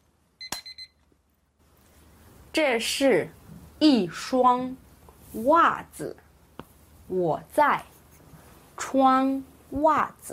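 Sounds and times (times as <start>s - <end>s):
faint noise: 0.0s - 10.3s
alarm clock electronic beeping: 0.4s - 1.0s
speech: 2.6s - 6.2s, 7.1s - 7.9s, 8.8s - 10.3s.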